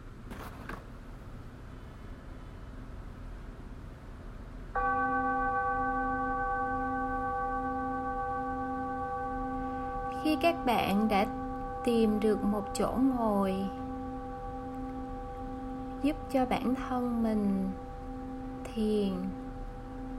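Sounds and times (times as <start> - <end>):
faint hiss: 0.0 - 20.1
meditation bell ringing: 4.8 - 20.1
speech: 10.3 - 13.8, 16.0 - 17.8, 18.8 - 19.4.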